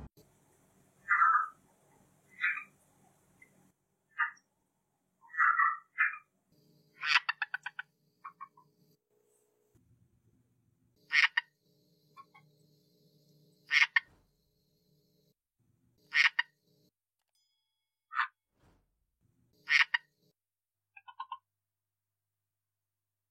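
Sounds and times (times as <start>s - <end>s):
red eye tree frog calling: 1.0s - 1.6s, 2.3s - 2.8s, 4.1s - 4.5s, 5.2s - 6.3s, 7.0s - 8.7s, 11.0s - 11.6s, 13.7s - 14.1s, 16.1s - 16.6s, 19.7s - 20.2s, 21.0s - 21.4s.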